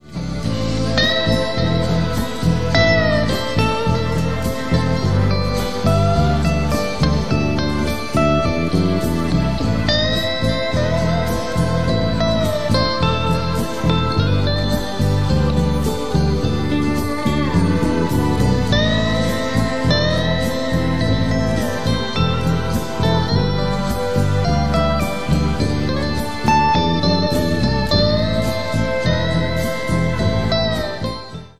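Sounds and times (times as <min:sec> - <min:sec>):
1987 prototype black electric guitar played live: 0:00.0 - 0:31.5.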